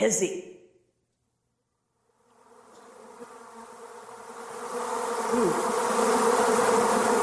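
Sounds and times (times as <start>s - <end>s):
speech: 0.0s - 0.6s
swarm of bees buzzing: 2.1s - 7.2s.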